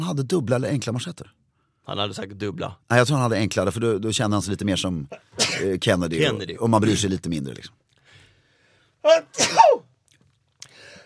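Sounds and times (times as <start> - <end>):
speech: 0.0 - 7.8, 9.0 - 9.9
person sneezing: 9.1 - 9.9.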